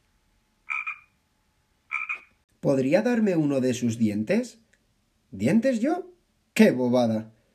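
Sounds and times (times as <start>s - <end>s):
frog croaking: 0.6s - 1.2s, 1.9s - 2.4s
speech: 2.6s - 4.6s, 5.3s - 7.4s.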